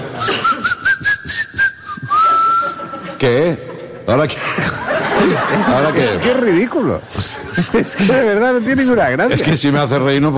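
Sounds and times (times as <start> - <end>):
laughter: 0.0 - 0.8, 2.0 - 9.5
whistling through the teeth: 0.2 - 3.0
speech: 3.2 - 10.3.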